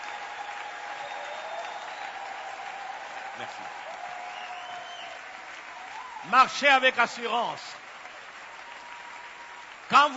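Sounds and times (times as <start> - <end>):
crowd applauding: 0.0 - 10.1
speech: 3.4 - 4.0, 6.2 - 7.8, 9.9 - 10.1.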